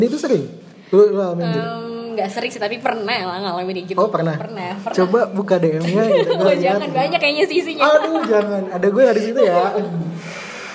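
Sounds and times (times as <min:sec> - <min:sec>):
speech: 0:00.0 - 0:10.4
laughter: 0:05.8 - 0:10.1
coffee shop coffee machine hissing steam: 0:10.2 - 0:10.7.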